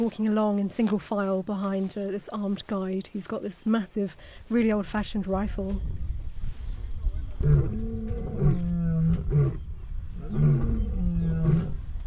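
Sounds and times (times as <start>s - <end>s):
speech: 0.0s - 6.1s, 7.4s - 7.9s
low rumbling background: 5.2s - 12.0s
lions roaring with deep groaning calls: 7.4s - 11.8s.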